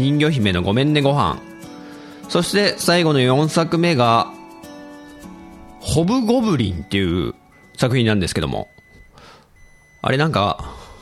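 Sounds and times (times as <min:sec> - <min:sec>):
speech: 0:00.0 - 0:01.5, 0:02.3 - 0:04.4, 0:05.8 - 0:08.7, 0:10.0 - 0:10.8
rice cooker beeping when rice is done in a classroom: 0:07.2 - 0:10.9.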